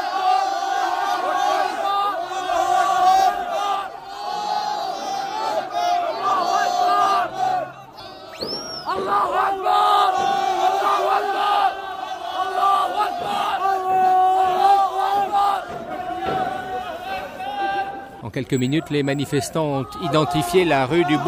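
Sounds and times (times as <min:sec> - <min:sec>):
large crowd of protesters shouting and chanting: 0:00.0 - 0:21.2
brief high calls: 0:06.1 - 0:13.4.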